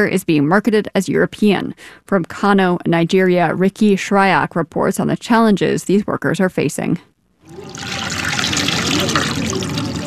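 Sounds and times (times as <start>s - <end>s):
speech: 0.0s - 9.6s
water sloshing as cotton fabric is soaked in a concrete dye pit: 7.4s - 10.0s.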